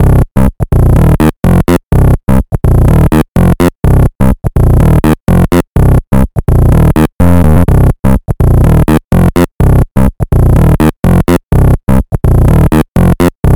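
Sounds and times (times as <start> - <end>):
music at 125 BPM in C minor: 0.0 - 13.5.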